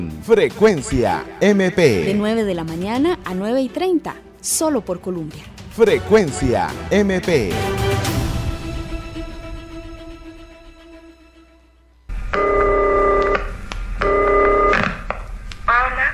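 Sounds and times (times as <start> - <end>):
speech: 0.0 - 7.8
laughter: 0.3 - 8.4
telephone line ringing on a call out to a radio listener: 12.2 - 15.0.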